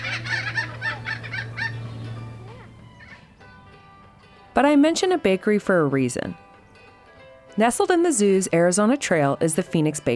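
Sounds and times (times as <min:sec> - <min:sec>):
thick-billed parrot giving cackling squawks: 0:00.0 - 0:03.4
speech: 0:04.6 - 0:06.4, 0:07.6 - 0:10.1.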